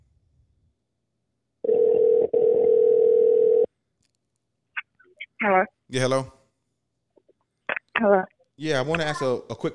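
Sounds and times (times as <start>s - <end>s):
telephone ringback tone heard down the line: 1.6s - 3.7s
speech: 5.4s - 6.4s, 8.0s - 9.7s.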